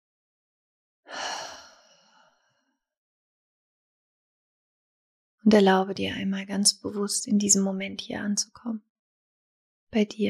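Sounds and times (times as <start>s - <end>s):
deep breath during a guided relaxation exercise: 1.1s - 2.8s
speech: 5.4s - 8.9s, 9.9s - 10.2s.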